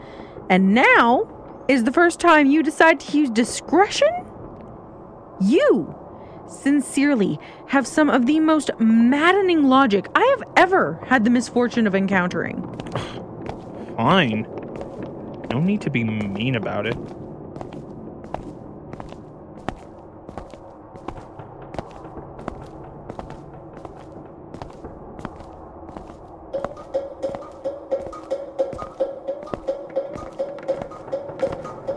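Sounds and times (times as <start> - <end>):
speech: 0.5 - 4.2, 5.4 - 13.2, 14.0 - 14.6, 15.5 - 17.2
light thudding footsteps: 12.4 - 31.9.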